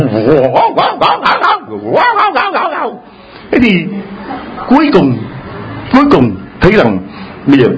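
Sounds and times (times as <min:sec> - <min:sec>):
speech: 0:00.0 - 0:02.5, 0:03.6 - 0:05.3, 0:05.9 - 0:07.7
dog barking and yipping: 0:00.5 - 0:03.0.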